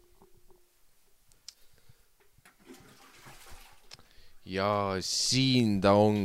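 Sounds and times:
toilet flushing: 0:02.4 - 0:04.0
speech: 0:04.5 - 0:06.2.

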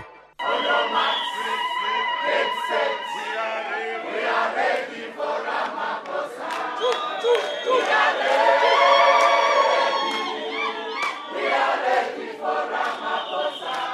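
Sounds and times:
whistles: 0:00.4 - 0:03.6, 0:06.8 - 0:08.9, 0:10.0 - 0:13.9
large crowd roaring and cheering an arrival: 0:00.4 - 0:13.9.

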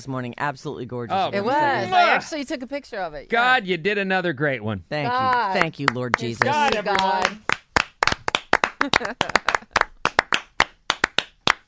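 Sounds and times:
speech: 0:00.0 - 0:07.5, 0:08.8 - 0:09.5
hands clapping: 0:05.1 - 0:11.6.

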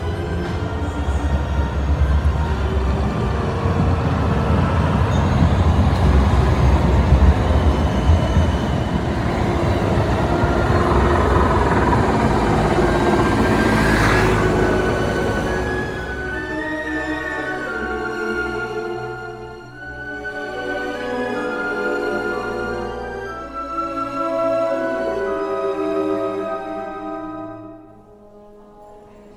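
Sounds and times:
tram wheels screeching on rails: 0:00.0 - 0:18.0
tram rumbling on the street: 0:00.0 - 0:26.6.

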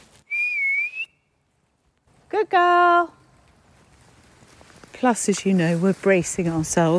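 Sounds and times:
person whistling to call a dog: 0:00.3 - 0:01.2
speech: 0:02.4 - 0:03.2, 0:05.0 - 0:06.9.

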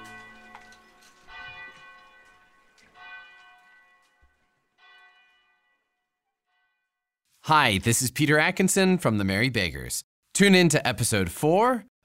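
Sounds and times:
church bells ringing: 0:00.0 - 0:06.8
speech: 0:07.5 - 0:12.0.

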